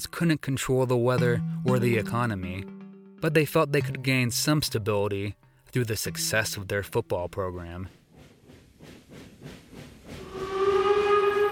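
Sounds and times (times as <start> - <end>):
speech: 0.0 - 8.0
steam locomotive puffing chuffs: 6.9 - 11.5
steam locomotive whistle: 10.2 - 11.5.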